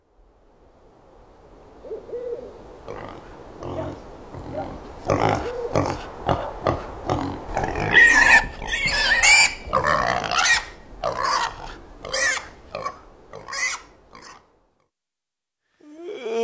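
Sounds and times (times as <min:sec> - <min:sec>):
pig grunting and squealing: 0:02.8 - 0:14.4.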